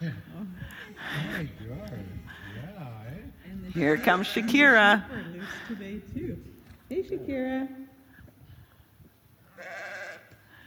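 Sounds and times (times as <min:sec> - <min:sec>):
speech: 0:01.0 - 0:02.0, 0:03.8 - 0:05.9
sheep bleating: 0:03.8 - 0:04.8, 0:09.5 - 0:10.3.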